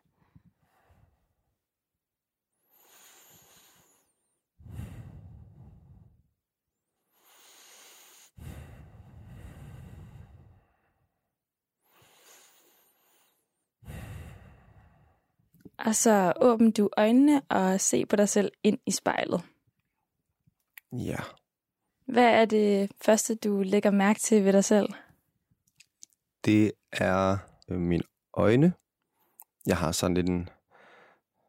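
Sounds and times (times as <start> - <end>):
slow deep breaths close to the microphone: 0.2 - 1.5, 2.7 - 6.4, 7.1 - 11.2, 11.8 - 15.5, 30.7 - 31.4
speech: 15.8 - 19.5, 20.9 - 21.4, 22.1 - 25.0, 26.4 - 28.8, 29.6 - 30.6.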